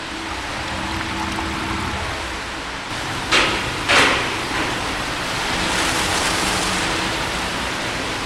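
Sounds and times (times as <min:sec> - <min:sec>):
water rushing into a closed-circuit test channel: 0:00.0 - 0:08.2.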